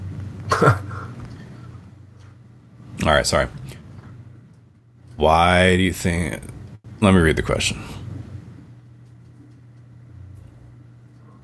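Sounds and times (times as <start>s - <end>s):
quiet hum: 0.0s - 11.4s
speaker clearing throat with a brief low grunt: 0.5s - 1.2s
speech: 0.6s - 0.9s, 3.0s - 3.8s, 5.2s - 8.0s.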